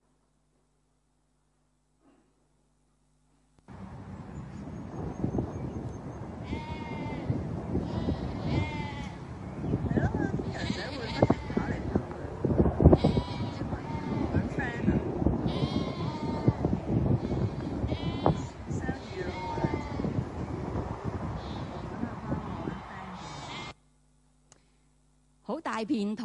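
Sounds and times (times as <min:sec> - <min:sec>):
wind rushing: 0:03.7 - 0:23.4
sheep bleating in a large grassland pasture on a ranch: 0:06.4 - 0:09.2, 0:10.4 - 0:12.0, 0:13.0 - 0:14.6, 0:15.4 - 0:20.2, 0:23.2 - 0:23.8
speech: 0:25.8 - 0:26.2.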